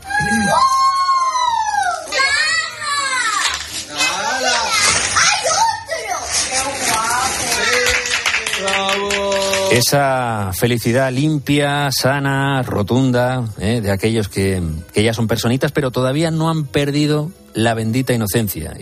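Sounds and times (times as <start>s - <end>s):
excited children shouting and squealing: 0.0s - 6.7s
speech: 0.2s - 0.8s, 9.7s - 18.7s
hands clapping: 7.6s - 10.0s.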